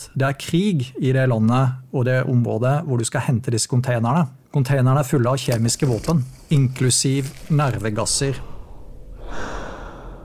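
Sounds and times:
speech: 0.2s - 8.5s
hollow raspy breathing through a gas mask: 8.4s - 10.2s.

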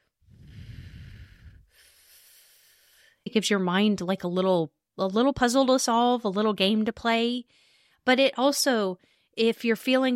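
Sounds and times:
breath drawn in and exhaled through tightly pursed lips: 0.2s - 3.2s, 7.5s - 8.0s
speech: 3.2s - 10.1s.

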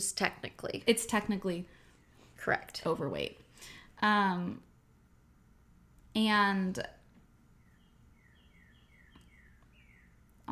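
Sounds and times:
speech: 0.0s - 1.8s, 2.4s - 4.7s, 6.2s - 7.0s
bird chirping: 7.5s - 10.5s.

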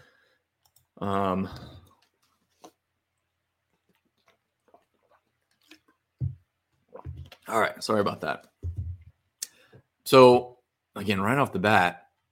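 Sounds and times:
speech: 1.0s - 1.8s, 7.5s - 8.5s, 10.1s - 12.0s
person sipping water: 3.8s - 7.5s
soft swallowing: 4.2s - 7.5s.

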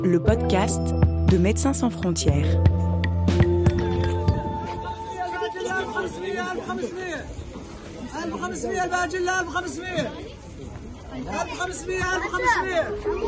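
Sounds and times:
speech: 0.1s - 2.9s, 8.4s - 10.3s, 11.2s - 13.2s
clinks: 3.4s - 4.5s
busy outdoor camp market crowd chatter: 3.4s - 13.2s.

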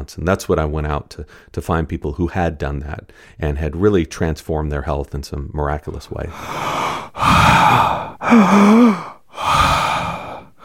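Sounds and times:
speech: 0.0s - 9.5s
person demonstrating exaggerated heavy breathing: 6.2s - 10.6s
voiced groaning tone during a breath: 6.3s - 10.5s.

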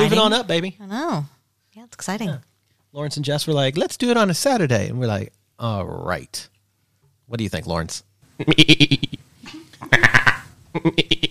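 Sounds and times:
speech: 0.1s - 6.5s, 7.3s - 9.3s, 9.9s - 11.2s
person imitating goat bleats: 9.8s - 11.2s.

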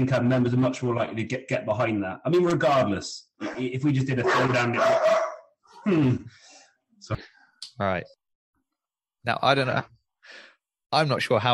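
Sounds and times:
speech: 0.0s - 5.2s, 5.8s - 6.4s, 7.0s - 8.2s, 9.2s - 11.5s
dog barking excitedly: 4.2s - 5.5s.

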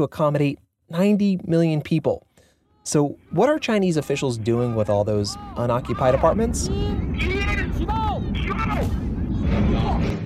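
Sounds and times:
speech: 0.0s - 8.0s
deep rumbling roar of half-built high-rise buildings collapsing after a demolition blast: 4.0s - 10.2s.

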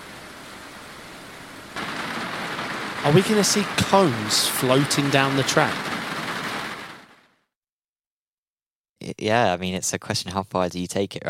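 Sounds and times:
heavy rain falling: 0.0s - 7.3s
speech: 3.0s - 5.9s, 9.2s - 11.2s.

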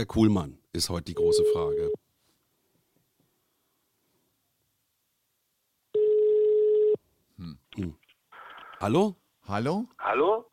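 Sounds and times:
speech: 0.0s - 2.0s, 7.4s - 8.0s, 8.8s - 10.5s
telephone ring tone as a call is dialled out: 1.2s - 2.0s, 6.0s - 7.0s.

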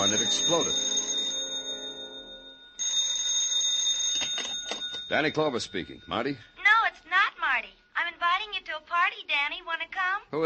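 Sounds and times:
speech: 0.0s - 1.0s, 5.1s - 6.5s, 8.9s - 10.4s
telephone bell ringing harshly: 0.0s - 7.0s.

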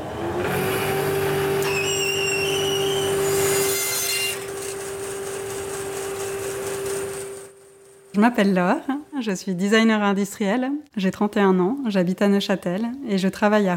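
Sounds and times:
band saw motor hum: 0.0s - 7.9s
band saw blade cutting through wood: 0.4s - 7.4s
speech: 8.2s - 13.7s.

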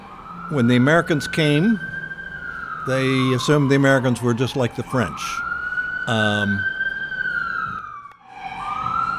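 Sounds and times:
emergency vehicle siren wailing: 0.0s - 9.1s
speech: 0.5s - 1.9s, 2.8s - 5.5s, 6.1s - 6.7s.

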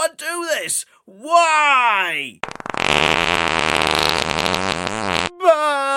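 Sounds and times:
speech: 0.1s - 5.9s
novelty farting animal toy fart noise: 2.4s - 5.4s.

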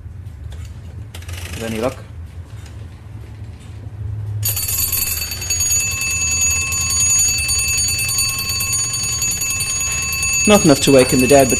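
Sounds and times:
speech: 1.6s - 2.1s, 10.5s - 11.5s
early alarm mechanism of an old clock ringing: 4.4s - 11.5s.

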